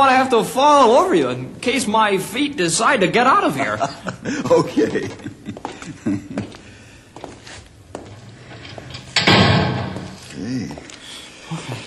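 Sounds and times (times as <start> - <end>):
speech: 0.0 - 5.3
laughter: 3.4 - 6.6
heavy door swinging shut with a solid thud: 8.0 - 10.3
door hardware rattling: 8.1 - 10.3.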